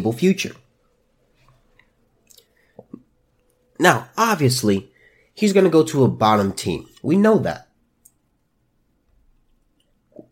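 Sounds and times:
speech: 0:00.0 - 0:00.6, 0:03.8 - 0:07.6
person sipping water: 0:01.5 - 0:03.1.

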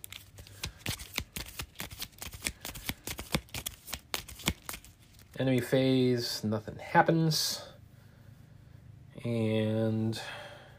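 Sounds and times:
cards shuffled back into an encounter deck during a tabletop card game: 0:00.0 - 0:05.7
speech: 0:05.4 - 0:07.7, 0:09.2 - 0:10.4.

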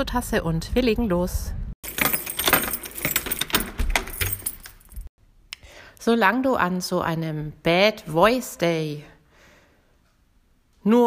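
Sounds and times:
speech: 0:00.0 - 0:01.6, 0:06.0 - 0:09.1, 0:10.8 - 0:11.0
keys jingling and scraping in a studio door lock: 0:01.8 - 0:05.1.

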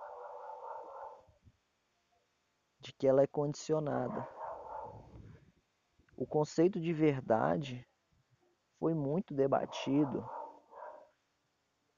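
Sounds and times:
dog barking: 0:00.0 - 0:01.3, 0:04.1 - 0:05.1, 0:09.7 - 0:11.2
hiss: 0:00.0 - 0:11.9
speech: 0:02.8 - 0:04.4, 0:06.2 - 0:07.9, 0:08.8 - 0:10.4.

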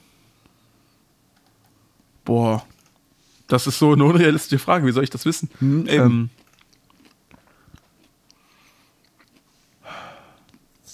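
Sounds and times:
speech: 0:02.3 - 0:02.7, 0:03.5 - 0:06.4
mouth smacking while chewing: 0:06.3 - 0:09.5, 0:10.4 - 0:10.9.

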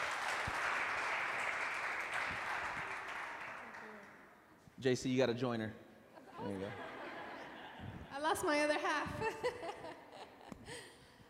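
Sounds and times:
crowd clapping: 0:00.0 - 0:04.4
speech: 0:04.8 - 0:05.8, 0:06.4 - 0:06.9, 0:08.1 - 0:09.9
laughter: 0:06.2 - 0:08.1, 0:09.2 - 0:10.9.

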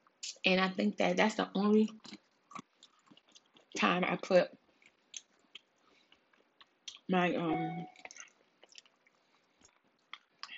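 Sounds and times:
speech: 0:00.4 - 0:02.2, 0:03.8 - 0:04.6, 0:07.1 - 0:08.0
faint wet chewing with squishy mouth sounds: 0:01.9 - 0:03.8, 0:04.6 - 0:07.1, 0:07.8 - 0:10.5.

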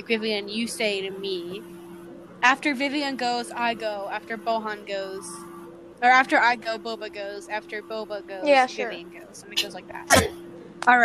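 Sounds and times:
speech: 0:00.0 - 0:01.8, 0:02.4 - 0:11.0
sneeze: 0:10.1 - 0:10.4.

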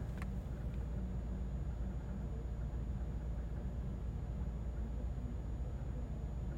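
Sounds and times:
low-frequency rumble of a running car: 0:00.0 - 0:06.5.

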